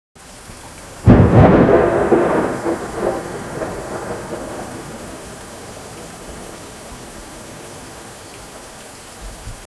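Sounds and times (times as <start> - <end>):
rainstorm: 0.2 - 9.6
thunder: 1.0 - 6.9.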